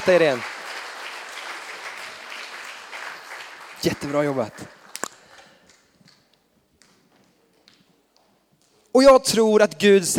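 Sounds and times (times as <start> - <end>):
speech: 0.0 - 0.5, 3.8 - 4.8, 9.0 - 10.1
church congregation applauding: 0.0 - 6.2.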